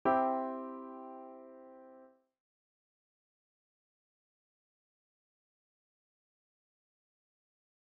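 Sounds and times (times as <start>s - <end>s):
minor chord progressions in C major: 0.0s - 2.1s.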